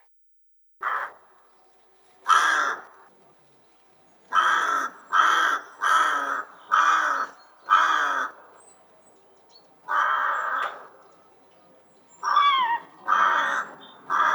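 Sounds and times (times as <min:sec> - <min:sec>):
rook giving harsh nasal caws: 0:00.8 - 0:01.3, 0:02.2 - 0:03.1, 0:04.3 - 0:08.6, 0:09.8 - 0:11.3, 0:12.2 - 0:14.3.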